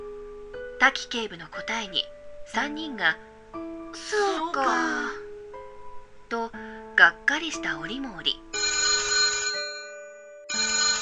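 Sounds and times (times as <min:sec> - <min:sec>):
speech: 0:00.8 - 0:05.2, 0:06.3 - 0:08.4
old-fashioned desk telephone ringing: 0:08.6 - 0:11.0.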